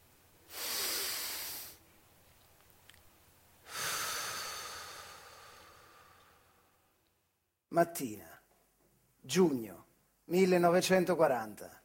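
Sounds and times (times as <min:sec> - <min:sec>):
deep breathing during a medical examination: 0:00.5 - 0:01.8, 0:03.6 - 0:07.0
speech: 0:07.8 - 0:08.3, 0:09.3 - 0:11.8.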